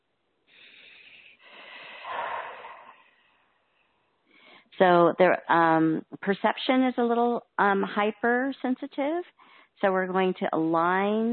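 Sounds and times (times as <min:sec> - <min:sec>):
slow deep breath: 0:00.5 - 0:04.8, 0:09.4 - 0:09.8
speech: 0:04.8 - 0:11.3.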